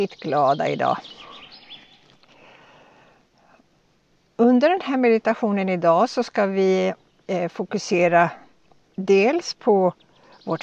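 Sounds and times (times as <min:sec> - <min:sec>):
speech: 0:00.0 - 0:01.3, 0:04.4 - 0:08.4, 0:09.0 - 0:10.6
faint high bird chirps outdoors: 0:00.0 - 0:03.1, 0:06.7 - 0:10.6
soft hiss of outdoor ambience: 0:00.0 - 0:10.6.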